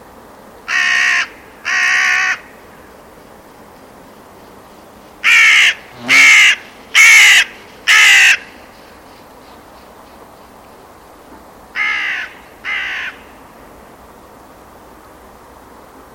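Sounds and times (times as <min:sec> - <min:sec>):
bird giving harsh crow-like caws: 0:00.7 - 0:02.8, 0:05.2 - 0:08.6, 0:11.7 - 0:13.3.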